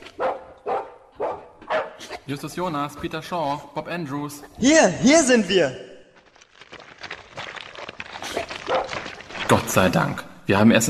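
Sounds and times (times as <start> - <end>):
dog barking: 0.0 - 2.3, 8.7 - 9.1
speech: 2.3 - 5.9, 9.7 - 10.8.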